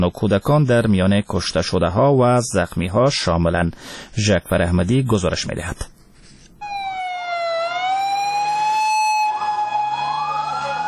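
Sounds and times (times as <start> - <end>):
speech: 0.0 - 6.0
ambulance siren wailing: 6.6 - 10.8.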